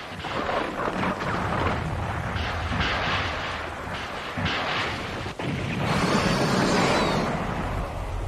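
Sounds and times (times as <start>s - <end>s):
heavy gunfire from a battery of guns: 0.0s - 8.1s.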